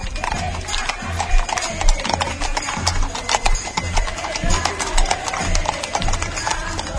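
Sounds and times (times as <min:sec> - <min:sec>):
hooves of riders' horses clip-clopping on a hard surface at a romería pilgrimage: 0:00.0 - 0:06.9.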